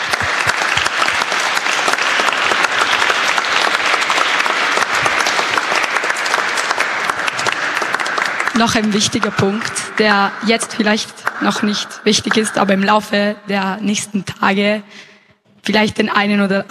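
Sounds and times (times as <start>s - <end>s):
room full of people clapping: 0.0s - 12.9s
speech: 8.6s - 15.1s, 15.7s - 16.6s.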